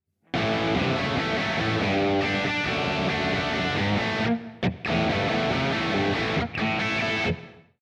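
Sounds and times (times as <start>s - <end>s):
guitar with a dark crunch: 0.3s - 7.7s.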